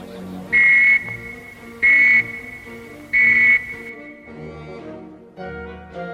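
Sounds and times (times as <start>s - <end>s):
loud shrill warning whistle blasts: 0.5s - 4.4s.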